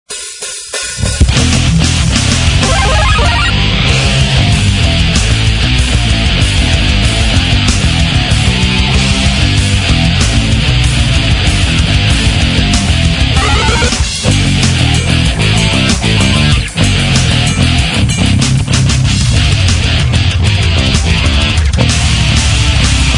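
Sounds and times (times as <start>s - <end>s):
metal music version: 1.0s - 23.1s.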